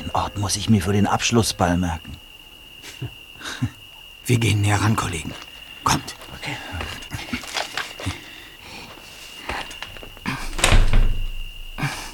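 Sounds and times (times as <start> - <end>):
speech: 0.1 - 2.2, 3.0 - 6.8
locked door of a burnt-out house rattling with metallic clunks: 9.8 - 11.8.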